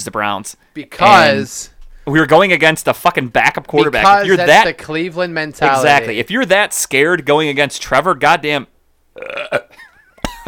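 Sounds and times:
speech: 0:00.0 - 0:09.6
loud throaty burp: 0:09.2 - 0:09.8.

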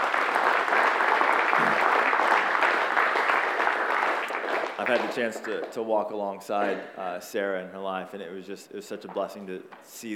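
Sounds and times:
audience applause: 0:00.0 - 0:05.7
speech: 0:04.9 - 0:10.1.

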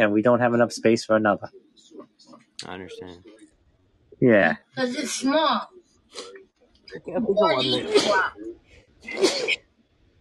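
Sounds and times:
speech: 0:00.0 - 0:01.8, 0:02.6 - 0:03.4, 0:04.2 - 0:09.6
loud sneeze with voiced drawn-in buildup: 0:07.5 - 0:08.4, 0:09.1 - 0:09.6.

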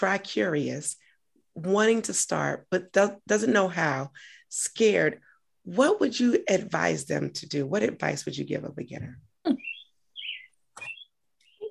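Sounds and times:
speech: 0:00.0 - 0:01.0, 0:01.6 - 0:09.6
bird chirping: 0:09.4 - 0:11.6.

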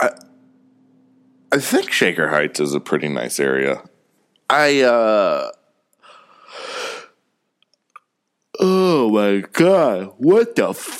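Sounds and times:
speech: 0:01.5 - 0:03.9, 0:04.5 - 0:05.6, 0:08.6 - 0:10.9
long breathy yawn: 0:08.6 - 0:09.0.

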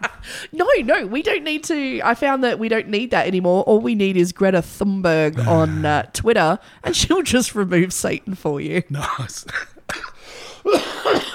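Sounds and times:
speech: 0:00.2 - 0:11.3
harsh coughs: 0:09.5 - 0:11.3.

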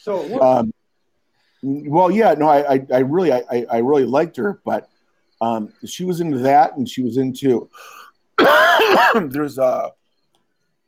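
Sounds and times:
speech: 0:00.0 - 0:00.8, 0:01.6 - 0:10.0
loud voiced rasping throat clearing and cough: 0:08.4 - 0:09.5.

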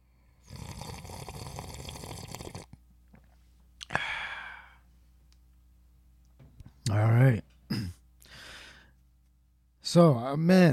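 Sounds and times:
slurping sip of coffee from a mug: 0:00.4 - 0:02.7
breathy satisfied exhale: 0:03.8 - 0:04.8, 0:08.2 - 0:08.9
speech: 0:09.9 - 0:10.7.

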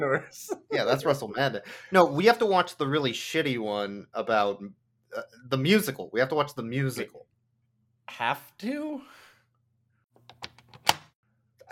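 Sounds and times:
speech: 0:00.0 - 0:07.3, 0:08.1 - 0:09.2
door lock turning: 0:10.3 - 0:11.1.

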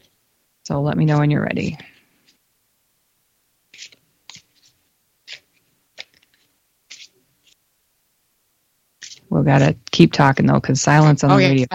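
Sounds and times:
speech: 0:00.7 - 0:01.9, 0:09.5 - 0:11.7
tarot cards being shuffled: 0:03.7 - 0:07.6, 0:09.0 - 0:09.3.

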